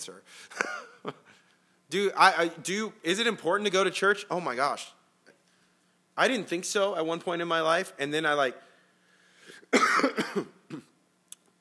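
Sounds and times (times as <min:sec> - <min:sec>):
speech: 0:00.0 - 0:01.2, 0:01.9 - 0:05.0, 0:06.2 - 0:08.7, 0:09.7 - 0:10.6
person coughing: 0:00.5 - 0:01.0, 0:09.6 - 0:11.0.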